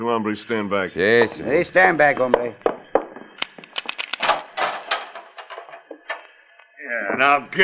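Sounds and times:
speech: 0.0 - 2.7, 7.2 - 7.6
heavy metal jail cell door clanking and rattling open: 4.2 - 6.2.

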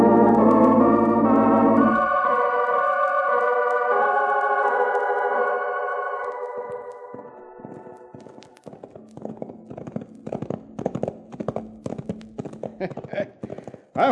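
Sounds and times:
sustained tonal sound: 0.0 - 12.6
horse hooves clip-clopping at a walking pace: 6.2 - 14.1.

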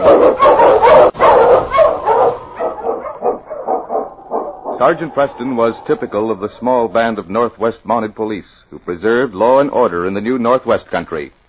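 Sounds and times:
husky sled dog barking and howling: 0.0 - 6.9
speech: 4.8 - 11.4.

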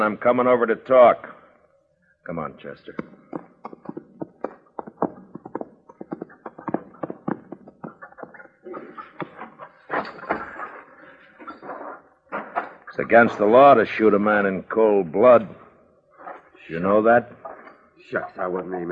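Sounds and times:
speech: 0.0 - 1.3, 2.2 - 3.2, 13.0 - 15.6, 16.7 - 17.4, 18.1 - 18.8
horse hooves clip-clopping: 3.0 - 10.7
scuffling hoofbeats and movement: 3.0 - 13.5.

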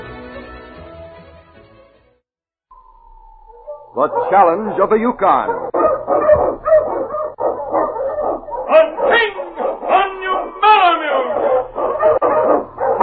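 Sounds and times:
sled dogs barking and yelping: 3.5 - 13.0
speech: 3.9 - 5.9.

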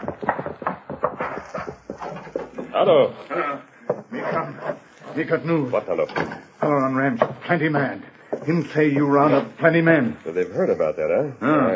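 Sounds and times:
hoofbeats of a horse ridden hard: 0.0 - 2.6
speech: 2.8 - 11.7.

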